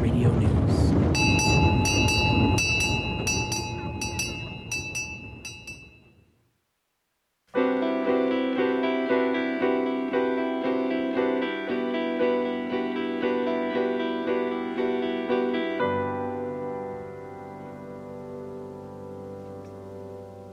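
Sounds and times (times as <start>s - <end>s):
mountain railroad train wheels clacking over the rails: 1.0s - 5.9s
sustained ringing tone: 1.1s - 6.3s
music: 1.2s - 5.8s, 7.5s - 20.5s.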